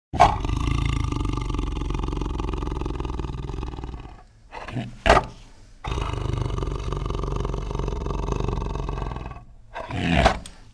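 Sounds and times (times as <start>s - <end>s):
tiger growling: 0.1s - 10.7s.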